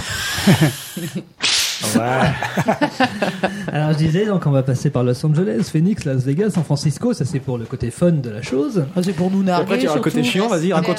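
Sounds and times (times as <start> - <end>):
laughter: 0.4 - 4.2
speech: 0.4 - 10.9
voice imitating a whip crack: 1.4 - 2.0.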